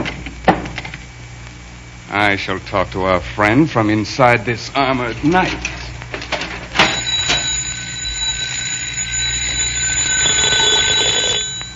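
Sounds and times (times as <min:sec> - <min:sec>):
speech: 0:02.1 - 0:05.8
doorbell ringing in a long metallic trill: 0:06.8 - 0:11.7.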